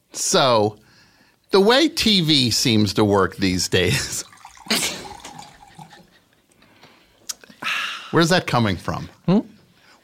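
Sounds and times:
speech: 0.2s - 0.8s, 1.5s - 5.0s, 8.1s - 9.5s
water trickling and dripping: 4.0s - 6.2s
hissing splash: 4.2s - 6.0s.

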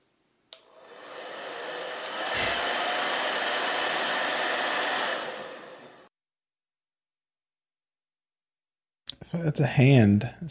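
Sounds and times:
hair dryer blowing: 0.6s - 6.1s
hair dryer switch click: 1.9s - 2.8s
speech: 9.3s - 10.4s.

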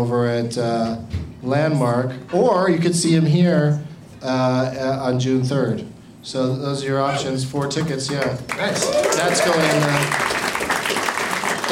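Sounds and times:
speech: 0.0s - 10.3s
light polite clapping from a small crowd: 7.6s - 11.7s.

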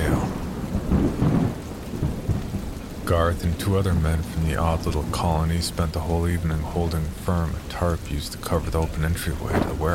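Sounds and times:
deep thunder rumbling: 0.0s - 9.9s
heavy rain on a metal roof: 0.0s - 9.9s
speech: 3.1s - 9.9s.

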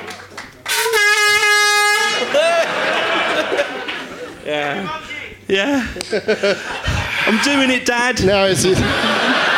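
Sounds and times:
loud sustained air horn blast for a quiz game winner: 0.7s - 2.5s
laughter: 2.1s - 5.0s, 5.6s - 9.5s
speech: 4.9s - 9.1s.

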